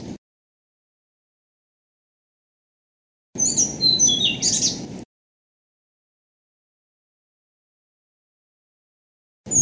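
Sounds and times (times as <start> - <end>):
Blue-throated flycatcher singing high clear whistles: 3.4 - 4.8.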